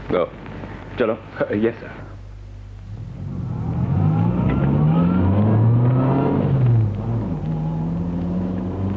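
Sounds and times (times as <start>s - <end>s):
speech: 0.1s - 2.0s
car engine revving and accelerating from a traffic light through gear changes: 2.9s - 8.9s.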